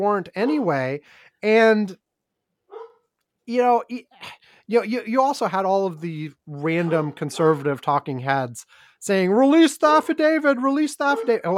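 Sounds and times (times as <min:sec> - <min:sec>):
speech: 0:00.0 - 0:02.0, 0:03.5 - 0:11.5
dog barking: 0:00.4 - 0:00.7, 0:02.7 - 0:03.0, 0:06.7 - 0:07.7, 0:11.1 - 0:11.4.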